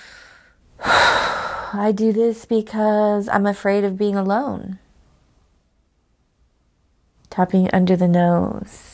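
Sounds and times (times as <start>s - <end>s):
big deep breath drawn in during a calming tapping exercise: 0.0s - 1.8s
speech: 1.7s - 4.8s, 7.4s - 8.9s.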